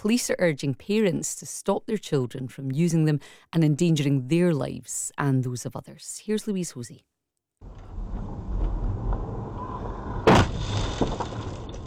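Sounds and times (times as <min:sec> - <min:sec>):
speech: 0:00.0 - 0:07.8
road and engine rumble from inside a moving car: 0:07.6 - 0:11.8
high-speed e-motorbike rider crashing into a car: 0:07.7 - 0:11.8.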